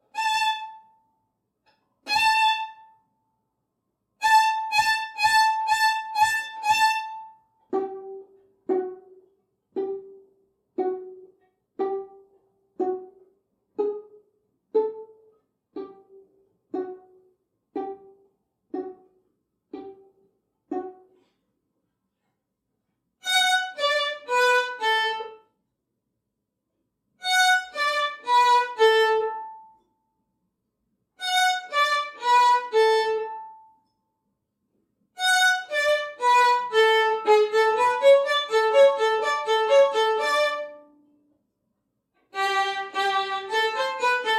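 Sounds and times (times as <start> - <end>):
beginner violin solo: 0.0 - 1.0, 2.0 - 3.0, 4.2 - 9.2, 9.8 - 15.2, 15.8 - 21.1, 23.2 - 25.4, 27.2 - 29.8, 31.2 - 33.7, 35.2 - 41.0, 42.3 - 44.3.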